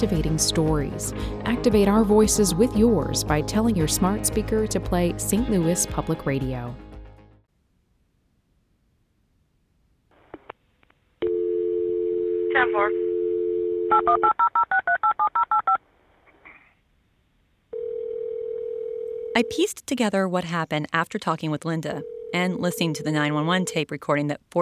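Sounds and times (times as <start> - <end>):
speech: 0.0 - 6.9, 19.4 - 24.6
telephone dial tone: 11.2 - 15.7, 17.8 - 19.5, 22.0 - 23.8.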